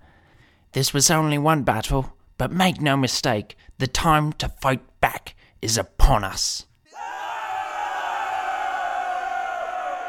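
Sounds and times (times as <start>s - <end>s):
speech: 0.7s - 6.7s
large crowd cheering and yelling: 6.9s - 10.0s.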